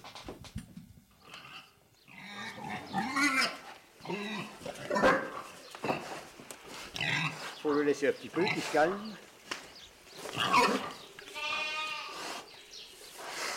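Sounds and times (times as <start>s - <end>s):
pig squealing and grunting: 1.3s - 6.2s, 10.3s - 12.3s
speech: 7.8s - 9.3s.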